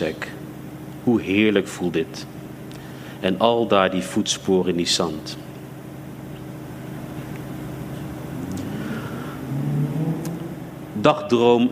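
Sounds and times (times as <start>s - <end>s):
speech: 0.0s - 0.3s, 1.0s - 2.4s, 3.2s - 5.4s, 11.0s - 11.7s
car engine droning and revving: 8.3s - 11.0s.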